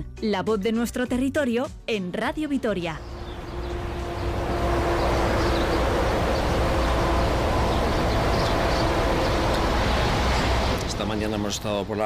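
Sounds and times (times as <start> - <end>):
speech: 0.0 - 3.1, 11.0 - 12.0
road traffic roar on the A68 motorway near Pobes: 3.0 - 12.0.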